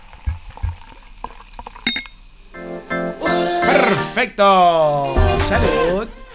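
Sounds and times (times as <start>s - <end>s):
Coca-Cola poured into a glass: 0.1s - 2.3s
clinks and taps: 1.9s - 2.2s
speech: 3.9s - 6.1s.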